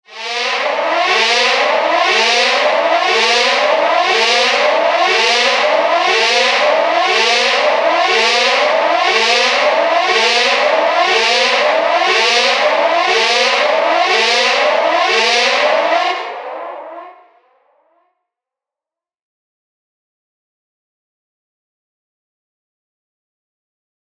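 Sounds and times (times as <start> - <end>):
ship siren: 0.1 - 18.1.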